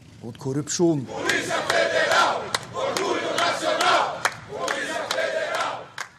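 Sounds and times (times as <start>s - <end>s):
speech: 0.2s - 3.0s
motorcycle club members chanting slogans outside courthouse: 1.1s - 6.1s
sharp claps or shouts outdoors: 1.2s - 6.1s.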